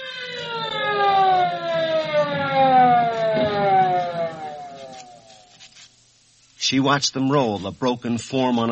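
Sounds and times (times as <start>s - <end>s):
ambulance siren wailing: 0.0s - 5.6s
speech: 6.7s - 8.7s.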